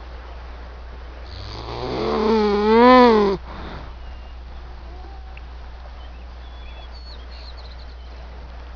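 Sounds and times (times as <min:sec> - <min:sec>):
faint low hum: 0:00.0 - 0:08.7
Eurasian beaver uttering a loud wavering whine: 0:01.3 - 0:03.9.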